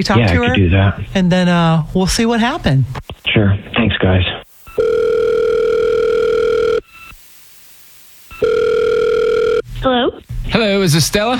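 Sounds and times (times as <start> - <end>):
speech: 0.0 - 4.4, 9.8 - 11.3
telephone ringback tone through the line while placing a call: 4.6 - 7.2, 8.3 - 9.6.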